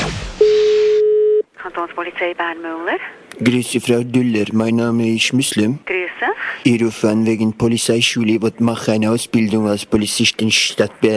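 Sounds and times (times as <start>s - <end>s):
steady loud telephone line tone: 0.4s - 1.4s
speech: 1.8s - 11.1s.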